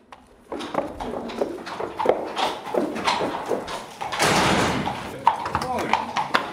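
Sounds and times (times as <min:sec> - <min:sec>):
police horse hooves clopping on a hard stable floor in Willich, Germany: 0:00.0 - 0:06.5
stable stall door sliding open: 0:02.9 - 0:05.1.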